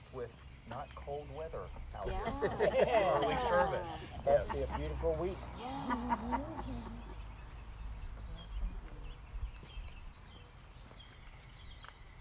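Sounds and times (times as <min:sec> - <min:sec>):
birds chirping and calling outdoors in the early morning: 0:00.0 - 0:12.1
speech: 0:00.1 - 0:07.0
laughter: 0:02.0 - 0:07.3.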